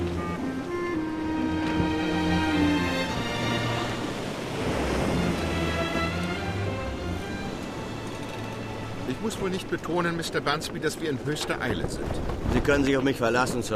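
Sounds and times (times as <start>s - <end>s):
tonal music: 0.0s - 10.1s
waves rolling and breaking on the open sea beneath a sailing ship: 0.0s - 13.7s
wind rushing over the sea: 3.2s - 8.0s
speech: 9.2s - 13.7s.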